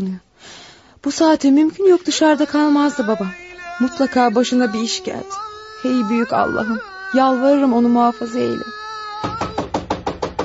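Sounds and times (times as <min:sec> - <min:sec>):
speech: 0:00.0 - 0:09.4
sharp knocks on a door: 0:09.2 - 0:10.4.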